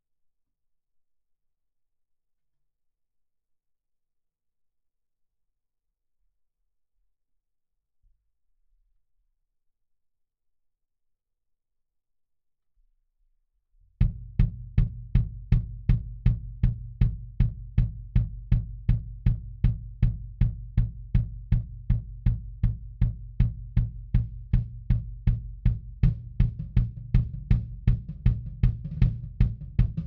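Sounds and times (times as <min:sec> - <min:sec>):
kick drum at 160 BPM: 0:14.0 - 0:30.0.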